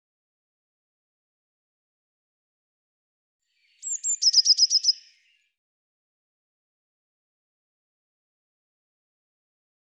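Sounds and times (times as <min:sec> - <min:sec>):
Eurasian blue tit calling: 0:03.7 - 0:05.3.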